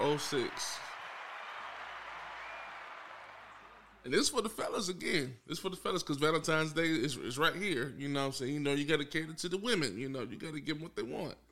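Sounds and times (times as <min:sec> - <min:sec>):
crowd applauding: 0:00.0 - 0:04.1
speech: 0:00.2 - 0:00.9, 0:04.0 - 0:11.4.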